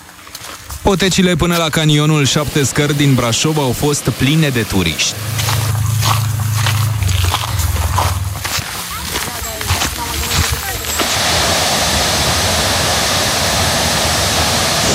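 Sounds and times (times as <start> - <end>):
speech: 0.9 - 5.6
waterfall roaring in the Seven Ladders Canyon near Brașov Romania: 1.9 - 14.9
indistinct voices: 2.3 - 11.2.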